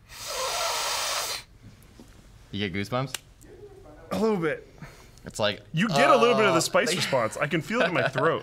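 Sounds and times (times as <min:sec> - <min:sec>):
long forceful nasal sniff of a spice rub: 0:00.0 - 0:01.6
speech: 0:02.5 - 0:03.3, 0:04.1 - 0:08.4.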